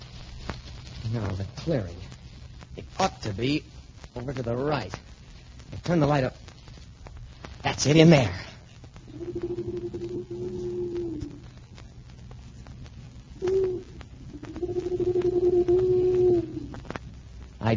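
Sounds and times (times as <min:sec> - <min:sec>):
faint steady hiss: 0:00.0 - 0:17.7
speech: 0:01.1 - 0:02.2, 0:02.8 - 0:05.0, 0:05.8 - 0:06.4, 0:07.6 - 0:08.4
owl hooting: 0:09.0 - 0:11.6, 0:13.3 - 0:16.9.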